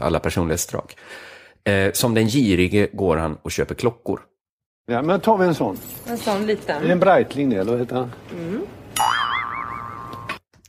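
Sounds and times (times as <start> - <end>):
speech: 0.0 - 9.1
cartoon boing sound effect: 9.0 - 10.4.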